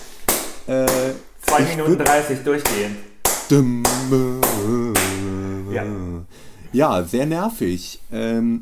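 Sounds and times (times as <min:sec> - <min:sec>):
steady sharp rhythmic knocking: 0:00.0 - 0:05.4
person singing a sea shanty: 0:00.7 - 0:06.3
speech: 0:00.7 - 0:08.6.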